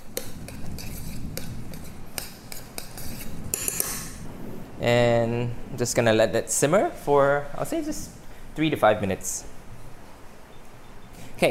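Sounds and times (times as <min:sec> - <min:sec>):
spoon stirring food in a cooking pot: 0:00.0 - 0:04.1
speech: 0:04.8 - 0:09.5.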